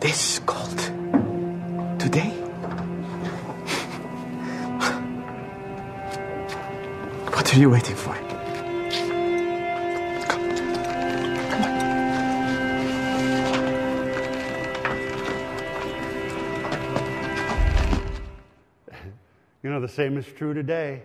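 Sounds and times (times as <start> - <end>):
speech: 0.0 - 1.0, 7.6 - 8.3, 19.8 - 21.0
sustained droning tonal background: 0.0 - 18.6
donkey hooves clip-clopping at a walking pace: 9.8 - 18.2
deep thump: 17.6 - 18.4.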